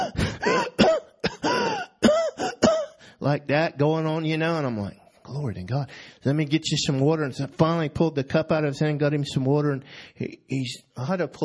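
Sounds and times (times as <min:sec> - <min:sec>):
man imitating another man coughing: 0:00.0 - 0:03.0
speech: 0:03.2 - 0:11.4.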